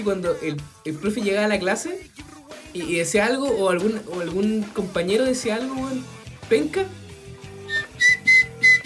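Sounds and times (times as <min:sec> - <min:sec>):
speech: 0:00.0 - 0:07.0
person whistling short shrill high-pitched bursts: 0:07.7 - 0:08.8.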